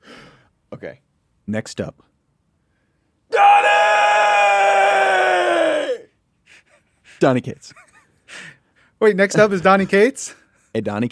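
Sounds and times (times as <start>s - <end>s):
speech: 0.8s - 2.1s, 7.2s - 11.0s
man yelling excitedly: 3.3s - 6.1s.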